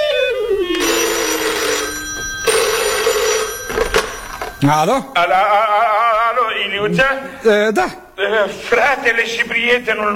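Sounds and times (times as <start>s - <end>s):
phone ringing with a melodic electronic ringtone: 0.1s - 5.0s
speech: 4.6s - 5.9s, 6.7s - 10.1s.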